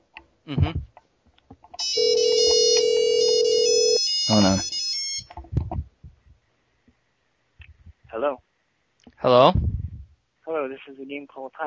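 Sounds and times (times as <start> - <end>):
speech: 0.5 - 0.9, 9.3 - 9.6, 10.8 - 11.6
voice burst: 0.5 - 0.9, 4.3 - 4.6
electronic telephone ringing for conference call: 1.8 - 5.3.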